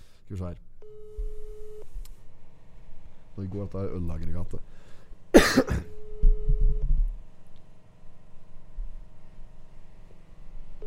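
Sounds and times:
low hum: 0.0 - 10.8
speech: 0.3 - 0.7, 3.4 - 5.9
telephone ringing tone on an outgoing call: 0.8 - 1.8, 6.0 - 6.9.

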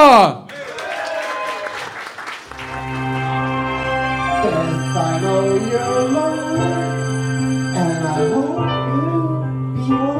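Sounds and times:
speech: 0.2 - 0.4
lively crowd applause: 0.5 - 6.0
loud sustained music with steady tones: 2.5 - 9.1.

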